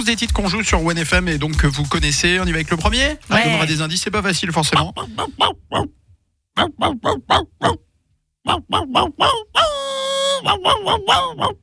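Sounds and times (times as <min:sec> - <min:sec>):
speech: 0:00.0 - 0:06.0, 0:06.6 - 0:09.8, 0:10.4 - 0:11.6
person imitating a dog barking and howling: 0:04.8 - 0:05.9, 0:06.6 - 0:07.8, 0:08.4 - 0:11.6.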